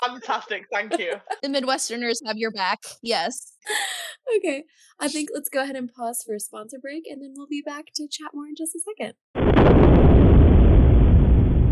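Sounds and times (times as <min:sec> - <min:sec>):
laughter: 0:00.0 - 0:01.8
speech: 0:00.2 - 0:09.8
deep explosion rumbling: 0:09.4 - 0:11.7.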